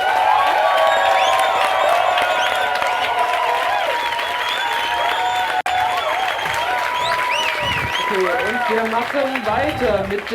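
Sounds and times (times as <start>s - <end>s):
large crowd clapping: 0.0s - 10.3s
whistles and whoops from a crowd: 0.4s - 8.6s
speech: 8.7s - 10.3s.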